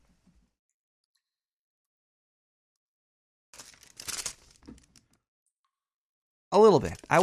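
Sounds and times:
paper envelope being handled, crinkling and rustling: 3.6 - 5.0, 6.8 - 7.2
speech: 6.5 - 7.2.

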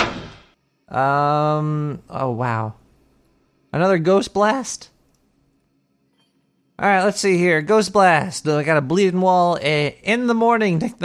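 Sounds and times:
door opening with a thud and rattle: 0.0 - 0.4
speech: 0.9 - 2.8, 3.7 - 4.9, 6.8 - 11.0.

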